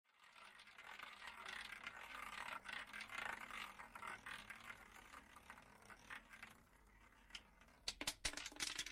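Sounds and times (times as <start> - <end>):
roulette wheel spinning: 0.1 - 8.9.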